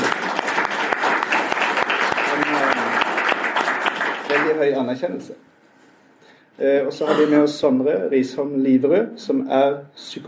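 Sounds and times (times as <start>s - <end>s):
audience applause: 0.0s - 4.6s
speech: 4.6s - 5.5s, 6.6s - 10.2s.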